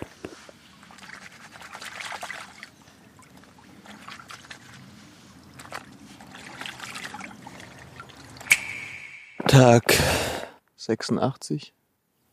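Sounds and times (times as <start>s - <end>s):
brook water trickling and splashing: 0.0s - 9.1s
sloshing as something is rinsed and scrubbed in a brook: 0.2s - 8.6s
sharp clink: 8.5s - 9.5s
speech: 9.6s - 10.1s, 10.9s - 11.8s.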